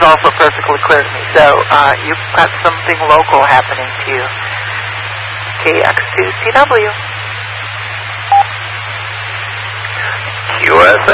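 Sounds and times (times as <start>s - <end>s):
low hum of an open radio channel: 0.0s - 11.1s
steady hiss of an open radio channel: 0.0s - 11.1s
speech: 0.1s - 4.6s, 5.6s - 7.1s, 10.6s - 11.1s
radio repeater courtesy beep: 8.3s - 8.5s.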